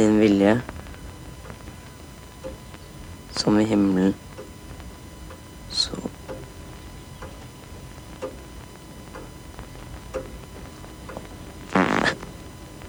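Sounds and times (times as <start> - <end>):
speech: 0.0 - 0.8, 3.4 - 4.2
clock ticking softly: 2.4 - 2.6, 6.2 - 9.4, 10.0 - 11.4
short loud buzzy fart at the dinner table: 11.7 - 12.4.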